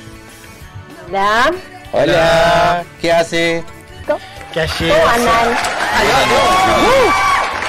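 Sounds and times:
speech: 1.1s - 7.3s
lively crowd cheering: 4.4s - 7.6s.

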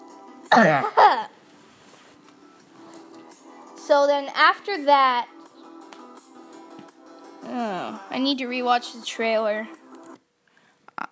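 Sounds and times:
person clearing throat: 0.5s - 1.3s
speech: 0.5s - 1.3s, 3.9s - 5.4s, 7.4s - 9.8s.

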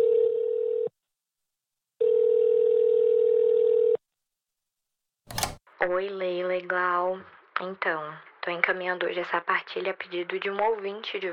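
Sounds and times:
telephone ringing tone for an incoming call: 0.0s - 0.9s, 2.0s - 4.0s
speech: 5.9s - 11.3s.

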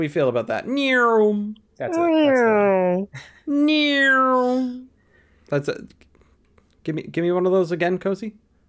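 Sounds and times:
speech: 0.0s - 4.9s, 5.5s - 6.1s, 6.8s - 8.4s
person imitating a cat meowing: 0.7s - 4.9s.

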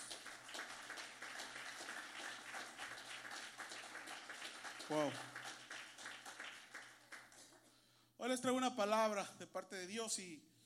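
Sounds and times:
congregation applauding: 0.0s - 7.8s
speech: 4.9s - 5.3s, 8.2s - 10.5s.

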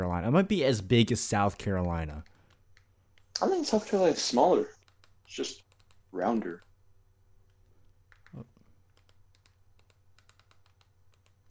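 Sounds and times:
speech: 0.0s - 2.3s, 3.4s - 6.7s
low hum: 0.0s - 11.5s
typing on a new computer keyboard: 1.6s - 3.3s, 4.8s - 6.8s, 8.1s - 11.5s.

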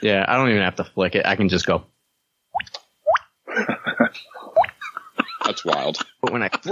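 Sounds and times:
speech: 0.0s - 1.9s, 5.5s - 6.7s
hollow bubbly mouth-made plops sliding upward in pitch: 2.6s - 3.4s, 4.4s - 4.9s
laughter: 3.5s - 6.7s.

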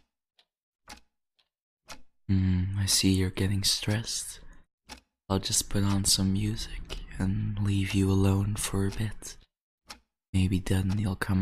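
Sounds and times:
clock ticking with alternating tick and tock: 0.0s - 11.3s
speech: 2.3s - 9.4s, 10.3s - 11.3s.

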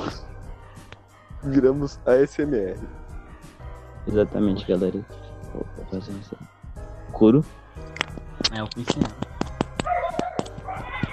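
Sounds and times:
speech: 1.4s - 3.0s, 4.0s - 6.4s, 7.2s - 7.9s, 8.5s - 9.3s
dogs fighting and barking: 9.3s - 11.1s.

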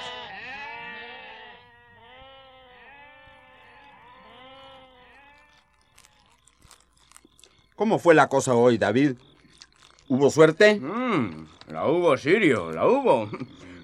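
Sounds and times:
sheep bleating in a sheepfold: 0.0s - 6.5s
animals chewing or shifting on straw: 0.4s - 13.8s
speech: 7.8s - 9.3s, 10.1s - 13.7s.

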